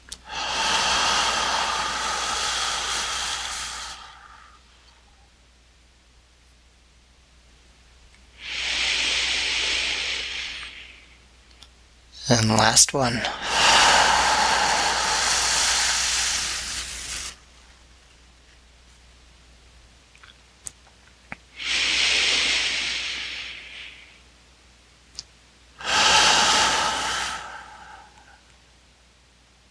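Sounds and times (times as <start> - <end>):
deep breathing during breathwork exercise: 0.2 - 4.7, 8.4 - 11.2, 13.2 - 17.4, 21.6 - 24.2, 25.8 - 28.5
speech: 12.3 - 13.6.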